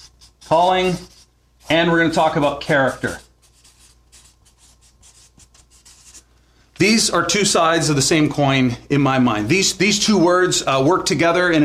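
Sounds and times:
writing on a board: 0.0 - 6.3
speech: 0.5 - 1.1, 1.7 - 3.2, 6.8 - 11.6.

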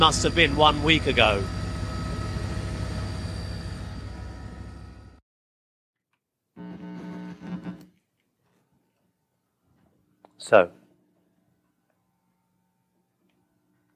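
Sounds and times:
speech: 0.0 - 1.6, 10.4 - 10.8
helicopter engine and rotor noise over Tacloban: 0.0 - 5.2.

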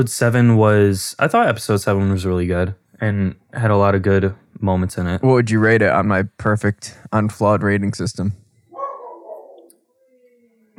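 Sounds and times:
speech: 0.0 - 8.4
dog barking: 8.7 - 9.7
dog whining: 8.7 - 10.7.

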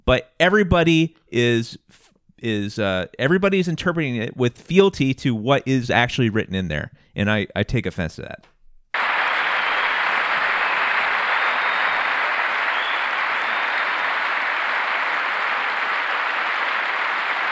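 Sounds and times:
speech: 0.1 - 8.5
large audience applauding during a speech: 9.0 - 17.5.

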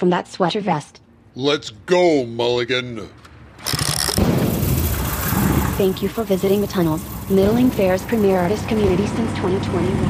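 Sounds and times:
speech: 0.0 - 4.3, 5.8 - 10.0
ratcheting clicks of a mechanical gate: 3.6 - 4.2
mechanical gate grinding open: 3.6 - 5.9
heavy rumble of turning gears: 3.6 - 10.0.

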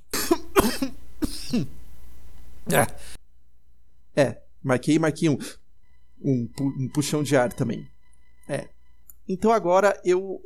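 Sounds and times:
raspy coughs: 0.0 - 1.8
speech: 0.6 - 1.8, 2.6 - 3.2, 4.2 - 5.6, 6.2 - 7.9, 8.5 - 10.4.

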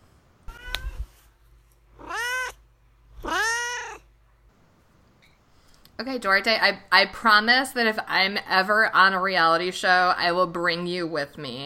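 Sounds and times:
male cat meowing: 0.5 - 1.1, 2.0 - 2.6, 3.2 - 4.1
speech: 6.0 - 11.6.

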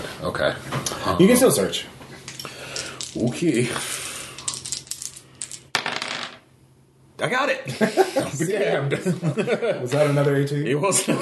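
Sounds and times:
speech: 0.2 - 2.0, 3.2 - 3.9, 7.2 - 11.2
dice rolled during a tabletop role-playing game: 4.4 - 6.4
laughter: 7.7 - 10.2.

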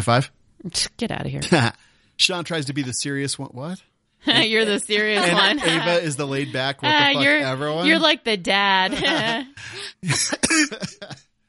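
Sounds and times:
speech: 0.0 - 11.3
laughter: 4.3 - 8.2, 8.8 - 11.2
person coughing into a microphone: 9.0 - 11.2.

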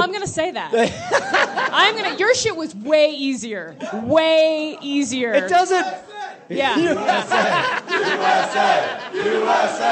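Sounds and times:
speech: 0.0 - 9.9
laughter: 0.7 - 2.4, 6.6 - 9.9
crowd chanting a patriotic rallying cheer: 5.8 - 9.9.

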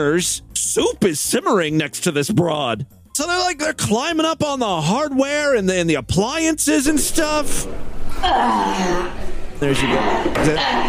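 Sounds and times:
speech: 0.0 - 10.8
woman grunting while lifting another person: 8.2 - 9.2.

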